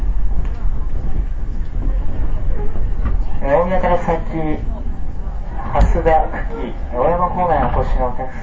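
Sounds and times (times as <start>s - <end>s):
faint indistinct voices: 0.0s - 8.4s
train arriving at its terminus platform: 0.0s - 8.4s
speech: 6.0s - 8.4s.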